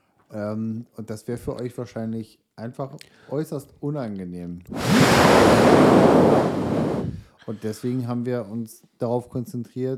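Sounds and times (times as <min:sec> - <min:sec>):
speech: 0:00.3 - 0:06.6, 0:07.4 - 0:09.9
surf roaring at the coast: 0:04.7 - 0:07.2
wind rushing at the coast: 0:04.7 - 0:07.3.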